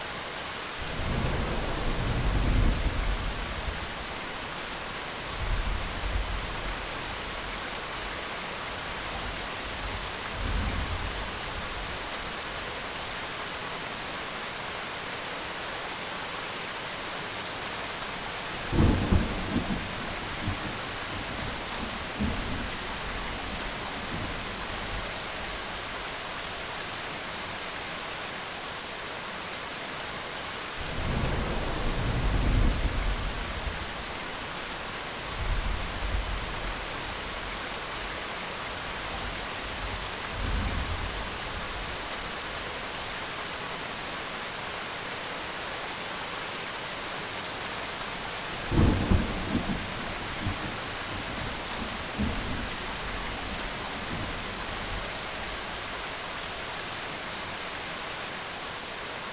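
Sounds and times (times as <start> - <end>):
rain: 0.0 - 59.3.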